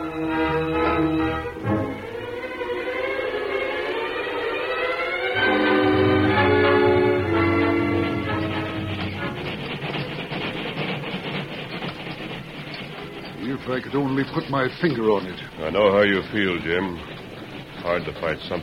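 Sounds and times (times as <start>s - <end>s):
train whistle wailing: 0.0s - 9.5s
train of an engine and a caboose rolling along new rails: 0.0s - 18.6s
speech: 13.8s - 17.2s, 17.8s - 18.6s.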